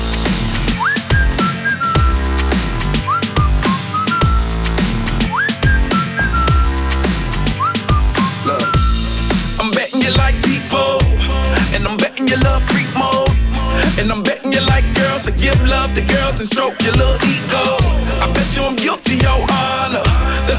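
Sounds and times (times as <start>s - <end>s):
loud steady beat with heavy bass and percussion: 0.0s - 20.5s
bright whistled melody in a song: 0.4s - 10.2s
speech: 15.8s - 17.8s.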